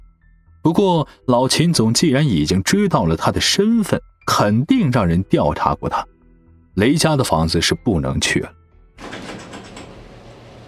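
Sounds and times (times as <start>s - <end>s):
speech: 0.7s - 6.1s, 6.8s - 9.1s
garage door opening: 9.0s - 10.6s.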